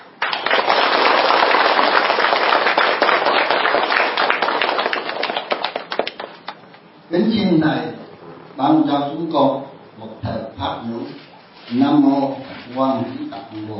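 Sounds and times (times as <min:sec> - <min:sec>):
audience applauding to welcome a Buddhist monk at a gathering: 0:00.0 - 0:06.6
speech: 0:07.1 - 0:07.9, 0:08.6 - 0:09.6, 0:10.2 - 0:13.7.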